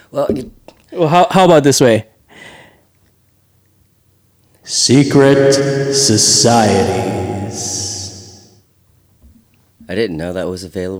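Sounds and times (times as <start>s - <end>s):
speech: 0.1s - 2.5s, 4.7s - 7.9s, 9.9s - 10.9s
voice speaking a short phrase with heavy reverb: 4.7s - 8.6s.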